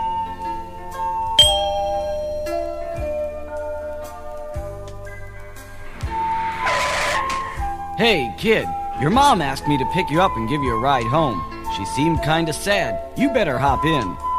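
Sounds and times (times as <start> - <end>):
soft steady musical background with low pulses: 0.0 - 14.3
bright page-turn chime of a read-along book: 1.4 - 2.8
speech: 8.0 - 14.2.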